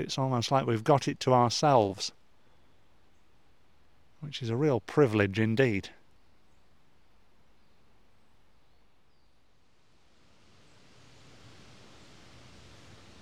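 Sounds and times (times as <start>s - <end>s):
speech: 0.0s - 2.2s, 4.2s - 6.0s
river water rushing: 10.2s - 13.1s.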